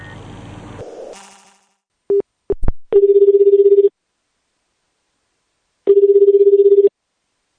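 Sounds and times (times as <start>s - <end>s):
buzzing telephone ring tones on the line: 3.0s - 3.9s, 5.9s - 6.9s.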